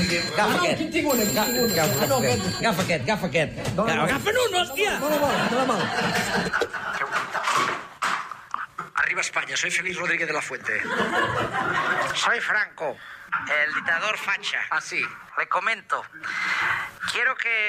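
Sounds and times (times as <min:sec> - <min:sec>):
telephone ringing with a bright high bell tone: 0:00.0 - 0:03.0, 0:03.9 - 0:07.0
speech: 0:00.1 - 0:06.8, 0:09.2 - 0:17.6
laughter: 0:02.0 - 0:02.7, 0:04.9 - 0:07.8, 0:10.8 - 0:12.2.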